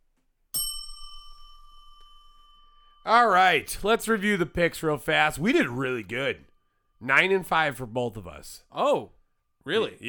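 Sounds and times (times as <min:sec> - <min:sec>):
bell ding: 0:00.6 - 0:03.8
speech: 0:03.1 - 0:10.0.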